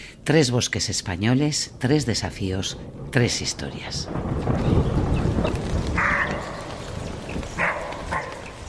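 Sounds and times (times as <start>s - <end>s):
speech: 0.3s - 5.7s
low rolling rumble of a thunderstorm: 1.1s - 8.6s
roe deer barking: 6.0s - 6.7s, 7.6s - 8.6s.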